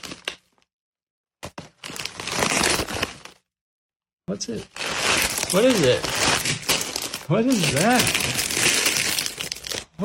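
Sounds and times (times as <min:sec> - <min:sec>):
package wrapping tearing: 0:01.8 - 0:03.4, 0:04.7 - 0:10.0
speech: 0:04.3 - 0:06.6, 0:07.3 - 0:08.4.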